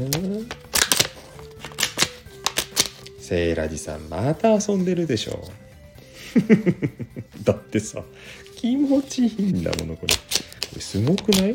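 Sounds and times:
speech: 0.0s - 0.6s, 3.3s - 5.6s, 6.3s - 11.5s
staple-free stapler crimping paper: 0.0s - 3.2s, 9.5s - 11.5s
laughter: 6.2s - 7.7s.

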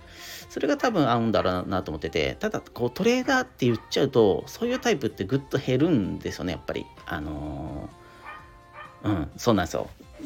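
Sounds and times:
speech: 0.5s - 8.0s, 9.0s - 10.2s
faint neighbour's dog barking: 1.4s - 1.7s, 4.6s - 5.0s, 8.2s - 9.1s.

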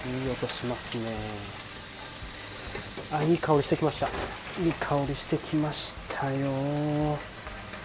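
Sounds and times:
bacon and onions frying in a pan: 0.0s - 7.8s
speech: 0.4s - 1.7s, 3.1s - 7.3s.

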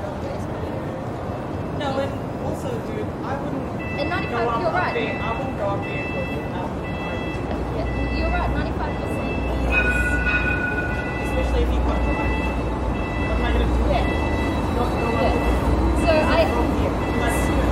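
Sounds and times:
tram rumbling along a city street: 0.0s - 17.7s
voices: 0.0s - 17.7s
speech: 1.8s - 6.8s, 7.9s - 9.7s, 11.4s - 12.6s, 13.5s - 17.7s
tram metallic squeals and whines: 9.0s - 13.6s.

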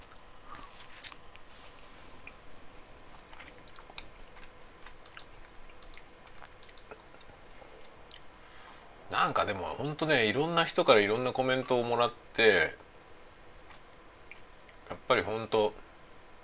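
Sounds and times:
someone chewing and crunching a monaka ice cream wafer: 0.0s - 1.5s, 3.1s - 8.3s
hiss: 0.0s - 16.4s
speech: 9.2s - 12.8s, 15.1s - 15.8s.

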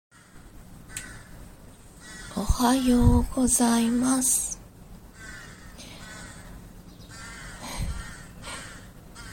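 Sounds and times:
steady low hum: 0.1s - 9.3s
crow cawing in whiny begging calls: 0.9s - 1.4s, 2.0s - 2.4s, 5.1s - 9.3s
speech: 2.4s - 4.6s.

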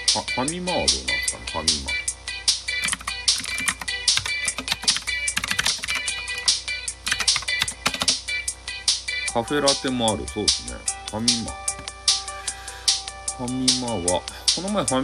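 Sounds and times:
speech: 0.2s - 2.0s, 9.4s - 11.6s, 13.4s - 15.0s
typing on a computer keyboard: 2.8s - 8.2s.

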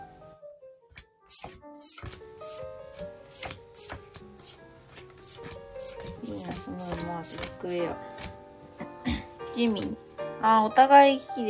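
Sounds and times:
tarot cards being shuffled: 0.9s - 8.4s
speech: 6.7s - 8.1s, 9.6s - 11.4s.

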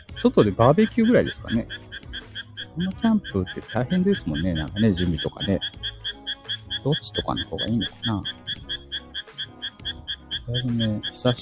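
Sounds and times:
frogs croaking: 0.0s - 11.4s
speech: 0.2s - 2.0s, 2.8s - 5.9s, 6.8s - 8.4s, 10.5s - 11.4s.

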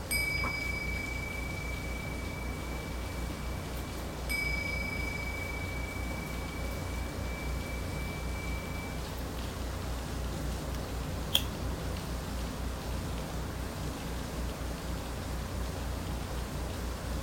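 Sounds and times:
singing bowl ringing a high clear tone: 0.0s - 9.2s
steady dense rain hiss: 0.0s - 17.2s.

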